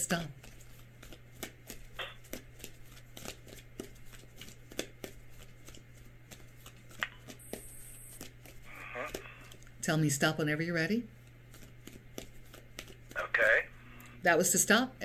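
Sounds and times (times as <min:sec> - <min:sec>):
speech: 0:00.0 - 0:00.4, 0:09.8 - 0:11.2, 0:14.2 - 0:15.0
faint hum: 0:00.0 - 0:15.0
deck of cards being shuffled for a card reading: 0:00.4 - 0:09.8, 0:11.2 - 0:13.6.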